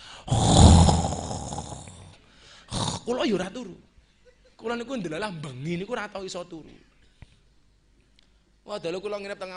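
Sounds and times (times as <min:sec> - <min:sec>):
person imitating loud rough rattling snoring: 0:00.2 - 0:03.1
speech: 0:03.1 - 0:03.9, 0:04.6 - 0:06.9, 0:08.7 - 0:09.5.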